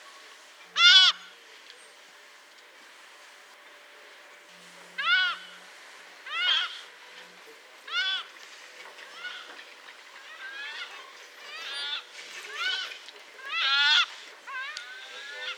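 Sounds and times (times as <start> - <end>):
Audouin's gull Ichthyaetus audouinii calling: 5.0 - 5.5, 6.3 - 6.8, 10.2 - 15.5.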